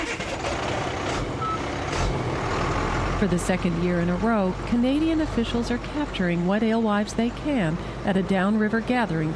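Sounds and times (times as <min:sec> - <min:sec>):
truck with water-filled tank idling and rumbling on the St. Croix River: 0:00.0 - 0:09.3
faint truck reversing beep: 0:01.4 - 0:01.6
speech: 0:03.2 - 0:09.3.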